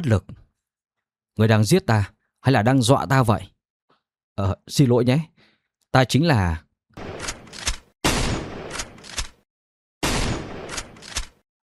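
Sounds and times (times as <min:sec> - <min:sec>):
speech: 0:00.0 - 0:00.4, 0:01.4 - 0:03.6, 0:04.4 - 0:05.3, 0:05.9 - 0:06.6
gunshots: 0:07.0 - 0:09.4, 0:10.0 - 0:11.4.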